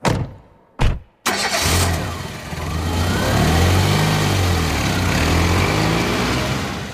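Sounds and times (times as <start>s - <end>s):
taxi car engine starting and running: 1.2s - 6.9s.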